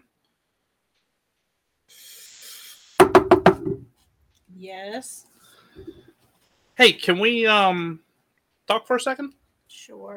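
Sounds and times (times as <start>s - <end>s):
soft hiss: 0.0s - 3.0s, 3.9s - 9.9s
quick sharp knocks on a wooden door: 3.0s - 3.9s
speech: 4.6s - 5.9s, 6.8s - 8.0s, 8.7s - 10.1s.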